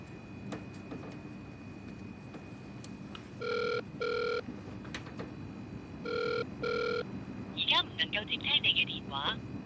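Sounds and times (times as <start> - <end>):
low hum: 0.0 - 9.6
telephone ringing in double bursts: 3.4 - 4.4, 6.0 - 7.1.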